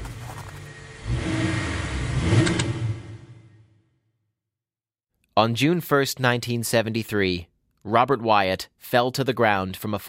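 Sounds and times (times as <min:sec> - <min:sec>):
car engine revving on an icy bridge by a Tube station in East London: 0:00.0 - 0:03.8
speech: 0:05.4 - 0:10.0.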